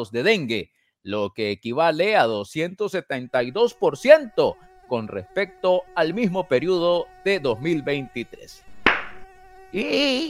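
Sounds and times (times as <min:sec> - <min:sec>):
speech: 0:00.0 - 0:08.7, 0:09.7 - 0:10.2
mosquito buzzing: 0:03.1 - 0:10.2
sharp hit: 0:08.8 - 0:09.2.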